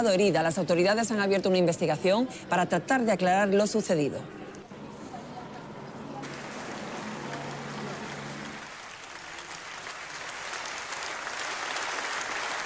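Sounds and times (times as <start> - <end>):
speech: 0.0 - 4.4
faint low voices: 4.1 - 8.5
large audience applauding in a parliamentary chamber: 6.2 - 12.6.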